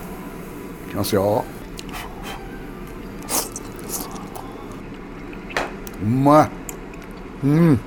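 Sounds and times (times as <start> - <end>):
speech: 0.9 - 2.1, 6.0 - 6.6, 7.4 - 7.8
crunch of a bite: 3.2 - 4.4
person chewing grilled beef tongue with green onion and salt: 3.2 - 4.8.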